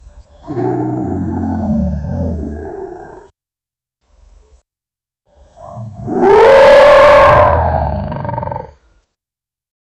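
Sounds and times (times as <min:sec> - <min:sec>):
lion growling and roaring: 0:00.4 - 0:03.3, 0:05.4 - 0:08.8.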